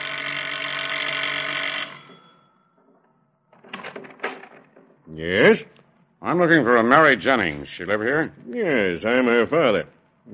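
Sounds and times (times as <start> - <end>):
doorbell ringing at front door: 0.0 - 3.4
speech: 5.2 - 10.3.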